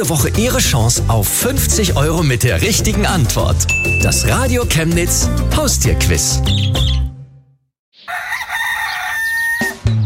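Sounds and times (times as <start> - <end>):
speech: 0.0 - 7.1
rooster crowing: 8.0 - 9.8.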